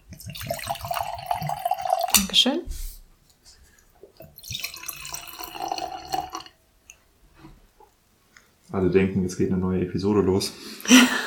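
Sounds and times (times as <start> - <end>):
cloudy drink pouring from a bottle into a glass: 0.0 - 2.3, 3.7 - 7.1
faint drips and clinks: 0.0 - 2.4, 3.2 - 7.1
speech: 2.2 - 2.8, 8.8 - 11.2
laughter: 10.8 - 11.2.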